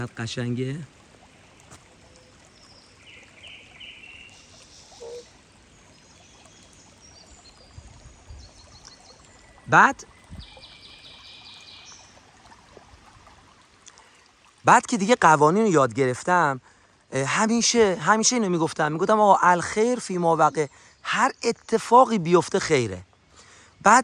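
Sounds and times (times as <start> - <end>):
speech: 0.0 - 1.0, 9.7 - 10.4, 14.6 - 23.1, 23.8 - 24.0
river water flowing: 0.0 - 24.0
faint bird chirps: 2.0 - 12.2.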